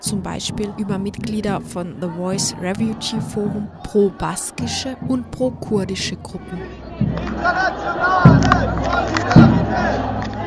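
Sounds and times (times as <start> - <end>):
laughter: 0.0 - 10.4
protest crowd chanting outdoors at a demonstration against deportation in Mannheim: 0.0 - 10.4
speech: 0.0 - 10.4.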